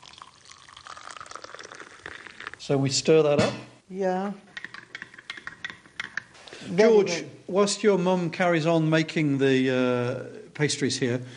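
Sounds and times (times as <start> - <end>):
hot water poured onto sugar and yeast in a bowl for pastry dough: 0.0 - 2.8
speech: 2.6 - 4.5, 6.7 - 11.3.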